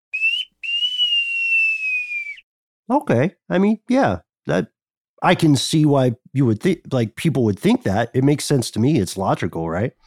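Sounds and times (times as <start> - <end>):
shrill whistle call signalling a maneuver: 0.1 - 2.5
speech: 2.9 - 10.0.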